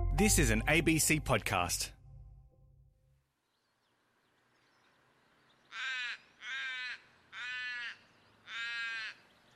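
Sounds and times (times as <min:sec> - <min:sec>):
speech: 0:00.2 - 0:02.0
bird calling in harsh rasping caws: 0:05.5 - 0:09.5.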